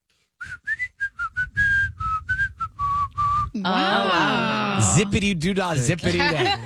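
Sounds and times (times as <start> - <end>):
person whistling a short bouncy tune: 0.4 - 3.6
laughter: 3.6 - 6.6
speech: 3.6 - 6.6.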